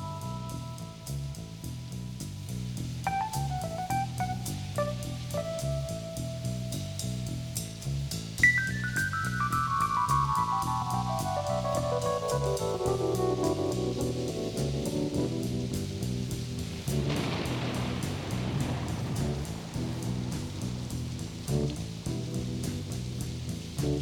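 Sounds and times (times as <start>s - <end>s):
bass groove: 0.0s - 24.0s
steady rain: 0.0s - 24.0s
broadband rush: 2.9s - 24.0s
keyboard playing a slow descending line: 3.1s - 6.8s, 8.4s - 17.2s.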